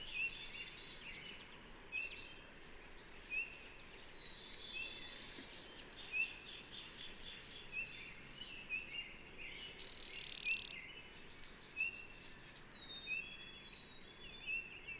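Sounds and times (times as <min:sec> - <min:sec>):
blue-winged warbler Vermivora cyanoptera song, sibilant note and buzzy follow-on: 0:00.0 - 0:14.9
steady insect noise: 0:09.3 - 0:10.8.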